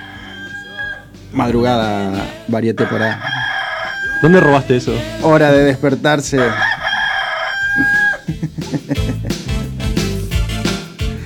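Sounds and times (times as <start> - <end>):
rooster crowing: 0.0 - 1.1, 2.8 - 4.7, 6.4 - 8.3
loud rhythmic music with a steady thumping beat: 0.0 - 11.2
speech: 1.3 - 3.4, 4.2 - 6.7, 7.8 - 9.0
laughter: 7.7 - 9.6.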